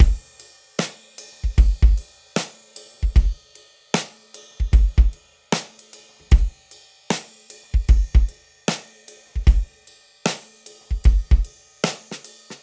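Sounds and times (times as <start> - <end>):
live trip hop acoustic drum loop: 0.0 - 0.2, 0.8 - 3.4, 4.0 - 6.5, 7.8 - 8.8, 9.4 - 9.7, 10.3 - 12.6.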